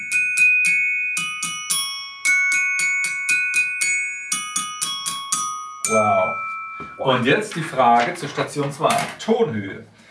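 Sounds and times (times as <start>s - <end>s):
glockenspiel melody played with mallets: 0.0s - 8.0s
speech: 5.9s - 10.0s.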